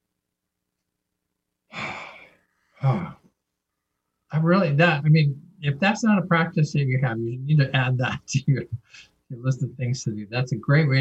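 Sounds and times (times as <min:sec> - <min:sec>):
deep breath: 0:01.7 - 0:03.3, 0:08.7 - 0:09.2
speech: 0:02.8 - 0:03.2, 0:04.4 - 0:10.9.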